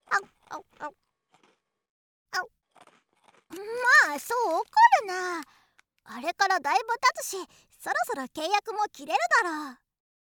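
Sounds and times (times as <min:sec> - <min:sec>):
chewing of hard-baked rice cracker: 0:00.1 - 0:01.8, 0:02.4 - 0:05.9
hard-baked rice cracker crunching as it is bitten with a canine tooth: 0:01.2 - 0:01.8, 0:02.6 - 0:05.9
speech: 0:04.2 - 0:09.8.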